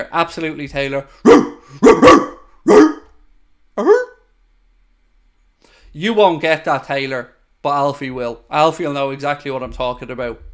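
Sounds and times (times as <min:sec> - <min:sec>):
speech: 0:00.0 - 0:02.9, 0:06.0 - 0:10.5
person imitating a dog barking: 0:01.2 - 0:03.1, 0:03.8 - 0:04.3.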